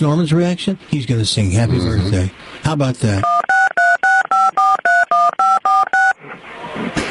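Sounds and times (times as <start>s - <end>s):
speech: 0.0s - 3.5s
touch-tone telephone keypad beeps: 3.2s - 6.2s.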